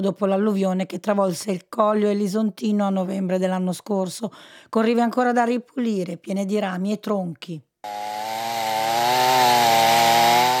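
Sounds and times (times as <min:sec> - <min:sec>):
speech: 0:00.0 - 0:08.2
chainsaw cutting through wood: 0:07.8 - 0:10.5.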